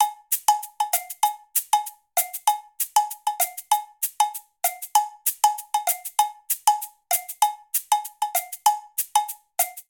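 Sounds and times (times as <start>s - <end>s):
pop Latin percussion cabasa: 0.0s - 9.8s
pop Latin percussion cowbell: 0.0s - 9.8s.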